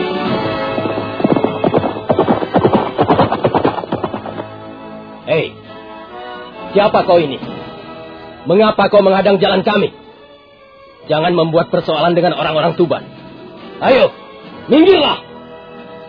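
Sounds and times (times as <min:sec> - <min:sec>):
horse galloping through a line of riders: 0:00.2 - 0:04.8
speech: 0:06.8 - 0:07.5, 0:08.5 - 0:10.0, 0:11.1 - 0:13.1, 0:13.8 - 0:15.2.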